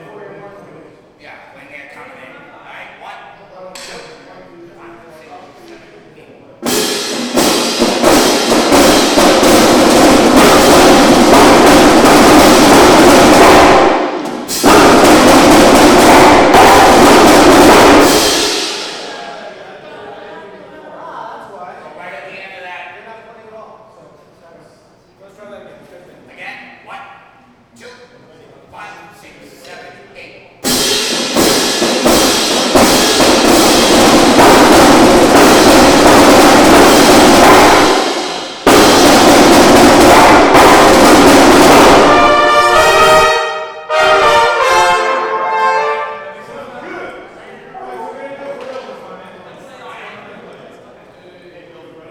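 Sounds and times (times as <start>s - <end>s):
celebration drum intro: 6.6s - 19.5s, 30.6s - 46.3s
brass and ensemble: 7.3s - 19.0s, 35.3s - 46.8s.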